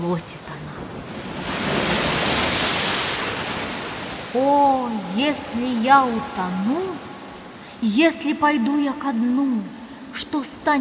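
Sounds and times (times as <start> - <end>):
stormy sea waves roaring: 0.0 - 8.4
speech: 0.1 - 1.0, 4.4 - 7.1, 7.8 - 10.8.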